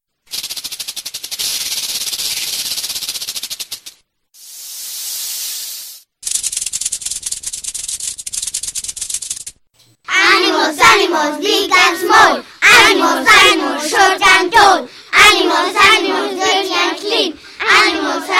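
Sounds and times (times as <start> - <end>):
snake hissing: 0.4 - 6.9
speech: 11.2 - 18.3.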